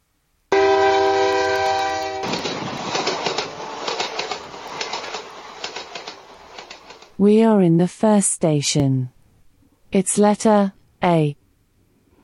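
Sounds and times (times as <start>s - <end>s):
train horn blaring: 0.5s - 2.8s
moving steam train chugging: 0.6s - 7.2s
speech: 7.2s - 9.2s, 9.9s - 11.4s.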